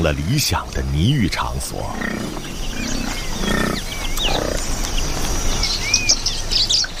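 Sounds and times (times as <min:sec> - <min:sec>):
speech: 0:00.0 - 0:03.6
steady outdoor rumble: 0:00.0 - 0:05.8
Nyasa lovebirds chirping: 0:00.0 - 0:06.9
low grunting animal noises: 0:00.6 - 0:04.9.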